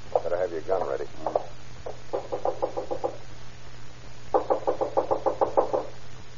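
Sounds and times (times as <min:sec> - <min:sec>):
low steady hum: 0:00.0 - 0:06.3
speech: 0:00.5 - 0:01.4
rapid knocking on a wooden house door: 0:02.1 - 0:03.2, 0:04.4 - 0:05.9.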